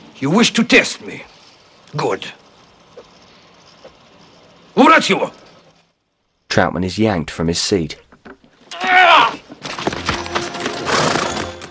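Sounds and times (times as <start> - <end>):
speech: 0.2 - 1.3, 1.9 - 2.4, 4.8 - 5.4, 6.6 - 8.0
horse whinnying: 8.7 - 9.4
line of horses clopping at a walk on a rocky mountain trail in Pakistan: 9.6 - 11.7.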